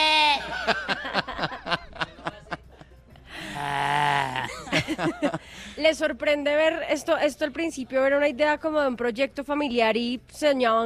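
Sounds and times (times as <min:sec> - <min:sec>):
father imitating a goat bleating with his voice: 0:00.0 - 0:00.5, 0:03.5 - 0:04.5
laughter: 0:00.4 - 0:03.0, 0:04.2 - 0:05.5
speech: 0:05.0 - 0:10.8.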